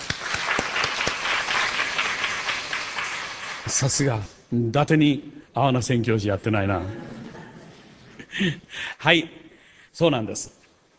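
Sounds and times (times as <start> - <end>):
audience applauding: 0.0 - 4.0
speech: 3.7 - 7.2, 8.4 - 9.4, 10.0 - 10.6.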